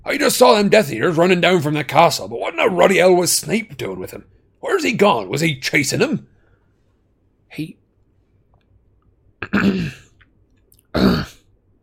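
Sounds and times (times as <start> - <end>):
speech: 0.1 - 6.3, 7.5 - 7.8, 9.5 - 10.0, 10.9 - 11.3
man clearing dry throat: 9.4 - 10.2, 10.9 - 11.4.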